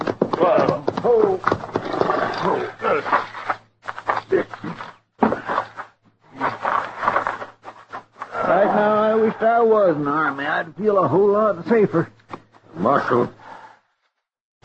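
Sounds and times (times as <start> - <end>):
horses snorting and blowing while resting: 0.0 - 9.9
horses' hooves shuffling: 0.0 - 13.6
speech: 0.4 - 0.8, 9.8 - 12.1, 12.8 - 13.4.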